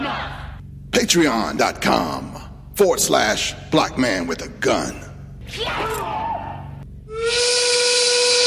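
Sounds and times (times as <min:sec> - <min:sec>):
speech: 0:01.0 - 0:06.1
loud factory steam whistle at a quarry blasting: 0:07.1 - 0:08.4.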